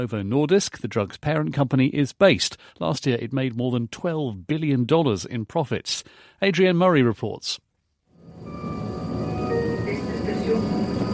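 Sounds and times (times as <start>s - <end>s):
speech: 0.0s - 7.6s
sustained mechanical tones: 8.2s - 11.1s
train idling at a platform in Kalundborg Denmark: 8.3s - 11.1s.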